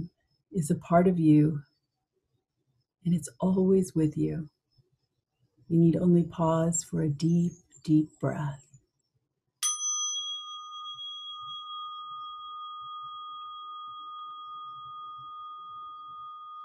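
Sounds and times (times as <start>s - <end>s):
speech: 0.6s - 1.7s, 3.0s - 4.6s, 5.7s - 8.7s
meditation chime ringing: 9.6s - 16.6s.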